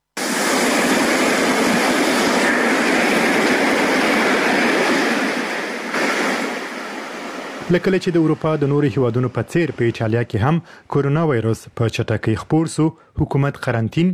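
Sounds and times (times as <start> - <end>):
sea waves washing over an empty beach in a coastal Italian city: 0.2 - 8.9
speech: 7.7 - 14.1.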